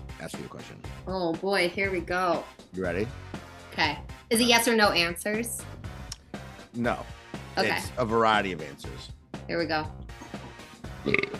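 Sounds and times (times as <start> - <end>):
speech: 0.2 - 5.8, 6.8 - 10.0, 11.0 - 11.3
buzzy mouth fart blown through the lips: 10.2 - 11.3.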